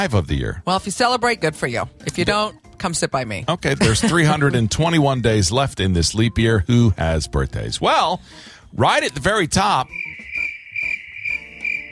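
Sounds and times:
speech: 0.0s - 10.3s
laughter: 3.8s - 4.7s
crickets chirping: 9.9s - 11.9s.

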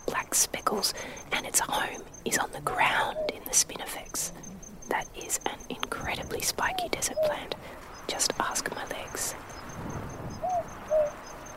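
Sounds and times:
speech: 0.4s - 10.0s
boobook owl hooting at night: 0.9s - 7.8s, 10.4s - 11.2s.

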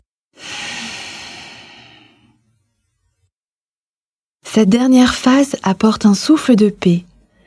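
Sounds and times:
slow exhale through the nose: 0.4s - 2.4s
speech: 4.5s - 7.1s.

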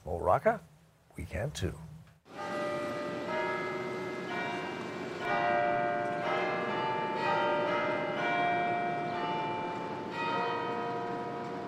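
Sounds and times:
speech: 0.3s - 1.9s
cathedral church bells pealing in New York on a Sunday morning: 2.3s - 11.6s.

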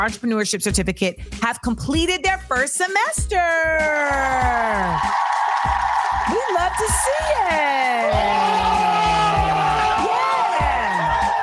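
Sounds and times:
speech: 0.0s - 9.6s
group of men cheering and whooping: 4.0s - 11.4s.

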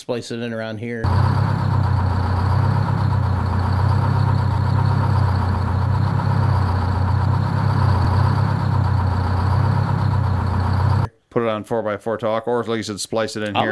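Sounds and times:
speech: 0.0s - 1.9s, 11.4s - 13.7s
diesel truck engine idling: 1.0s - 11.1s.

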